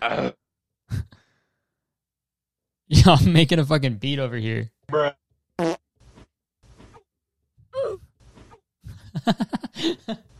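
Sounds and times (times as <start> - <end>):
speech: 0.0 - 0.4, 3.0 - 5.2, 9.3 - 10.3
farting: 5.6 - 7.1
laughter: 8.9 - 10.3.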